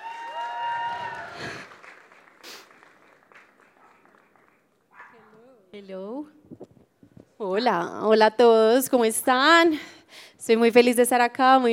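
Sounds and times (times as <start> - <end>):
scattered cheers and whoops: 0.0 - 1.8
audience applauding: 0.0 - 4.9
speech: 5.8 - 6.7, 7.4 - 11.7.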